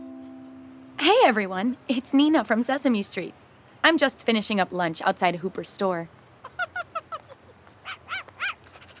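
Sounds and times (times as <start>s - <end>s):
speech: 1.1s - 6.2s
puppy yipping and barking: 6.5s - 8.9s.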